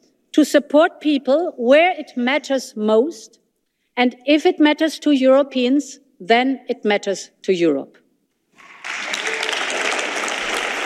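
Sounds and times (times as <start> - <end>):
speech: 0.4 - 3.4, 4.0 - 8.0
large crowd applauding: 8.6 - 10.8.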